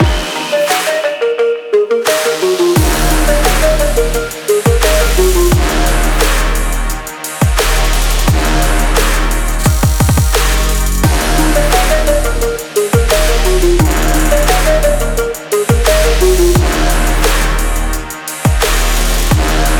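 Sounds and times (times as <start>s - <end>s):
extreme sport trap loop: 0.0s - 19.7s.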